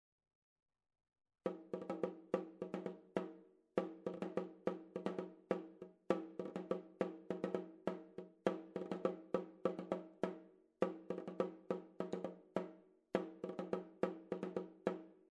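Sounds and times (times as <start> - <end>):
small drum: 1.5 - 15.2.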